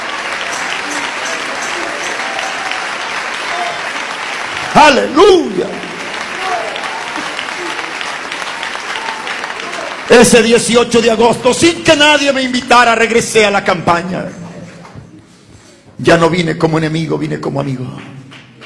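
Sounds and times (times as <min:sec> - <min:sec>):
large crowd applauding: 0:00.0 - 0:13.1, 0:17.8 - 0:18.6
speech: 0:04.8 - 0:05.8, 0:10.1 - 0:14.4, 0:16.0 - 0:18.2.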